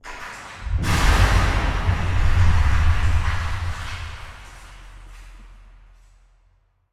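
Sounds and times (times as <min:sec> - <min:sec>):
cave ambience: 0:00.0 - 0:06.5.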